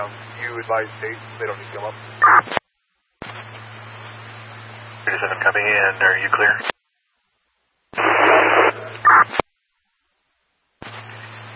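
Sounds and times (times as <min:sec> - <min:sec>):
radio static crackling and hissing: 0:00.0 - 0:02.6, 0:03.2 - 0:06.8, 0:08.0 - 0:09.5, 0:10.8 - 0:11.5
speech: 0:00.0 - 0:02.6, 0:05.1 - 0:06.7.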